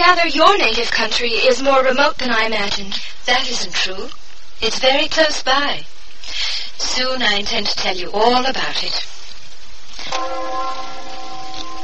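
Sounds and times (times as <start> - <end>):
speech: 0.1 - 9.1
funeral bell tolling: 10.1 - 11.8.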